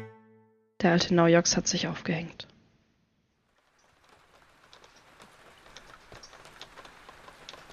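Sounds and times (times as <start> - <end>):
speech: 0.8 - 2.5
steady rain falling: 3.5 - 7.7.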